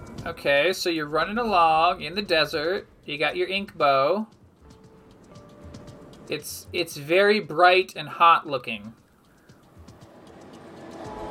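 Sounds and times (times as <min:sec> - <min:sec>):
speech: 0:00.2 - 0:04.4, 0:06.3 - 0:09.0
train arriving on tracks at a destroyed-looking train station: 0:09.5 - 0:11.2.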